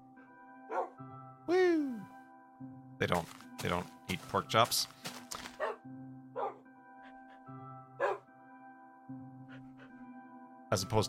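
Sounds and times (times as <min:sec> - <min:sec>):
dogs barking at a dog park: 0:00.7 - 0:01.0, 0:05.5 - 0:06.7, 0:07.9 - 0:08.3
speech: 0:03.0 - 0:05.0, 0:10.8 - 0:11.0.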